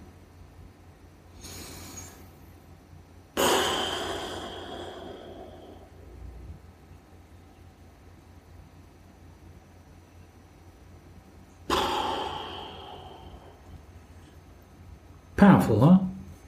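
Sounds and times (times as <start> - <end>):
slow deep breathing in a guided breathing exercise: 1.3 - 2.6, 3.4 - 6.7, 11.6 - 14.8
speech: 15.4 - 16.1.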